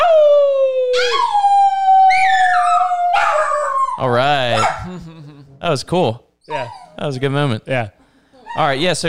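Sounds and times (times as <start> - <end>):
dog howling: 0.0 - 4.8
speech: 5.7 - 9.0.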